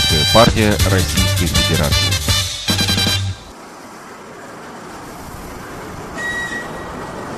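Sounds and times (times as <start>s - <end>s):
electric commuter train rolling rumble pulling in: 0.0s - 3.6s, 4.6s - 7.3s
speech: 0.4s - 2.2s
thin train wheel squeal: 5.6s - 7.3s.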